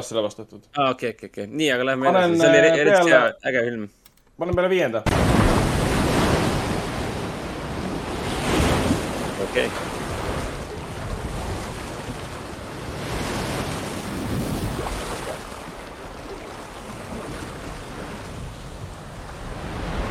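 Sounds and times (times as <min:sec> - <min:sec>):
speech: 0:00.0 - 0:05.6, 0:09.5 - 0:10.0
ocean waves rushing at sea: 0:05.1 - 0:20.0
wind gusting over open water: 0:05.1 - 0:20.0.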